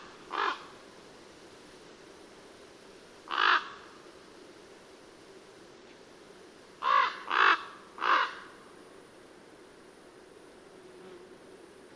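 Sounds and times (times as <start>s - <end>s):
common raven Corvo Imperiale calling with harsh throaty croaks: 0.3s - 0.7s, 3.3s - 3.8s, 6.8s - 8.5s.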